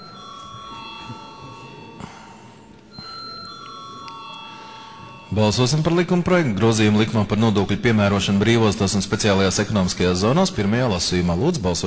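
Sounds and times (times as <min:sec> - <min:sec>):
parliamentary voting bell ringing before a vote on a bill: 0:00.0 - 0:09.5
faint room murmur in the Latvian parliament: 0:00.0 - 0:11.8
speech: 0:05.4 - 0:11.8.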